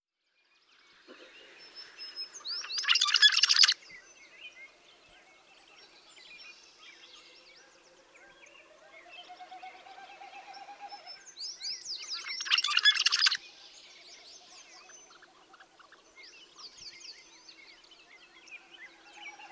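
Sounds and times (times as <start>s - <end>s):
rusty blackbird calling: 2.6s - 3.8s, 12.1s - 13.4s.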